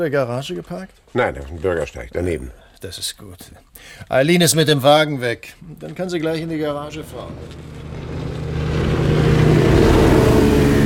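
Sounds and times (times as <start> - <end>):
speech: 0.0 - 8.0
racing motorboats roaring past: 6.9 - 10.8.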